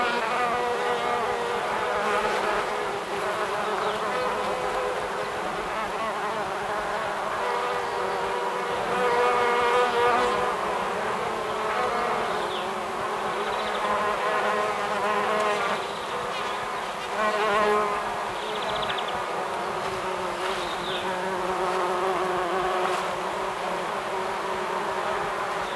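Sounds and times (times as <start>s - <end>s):
bees buzzing: 0.0s - 25.7s.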